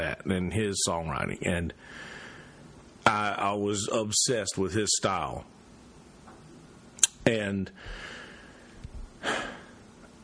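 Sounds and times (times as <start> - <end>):
speech: 0.2 - 2.2, 3.1 - 5.6, 7.2 - 8.2
raspy throat clearing: 9.2 - 9.7.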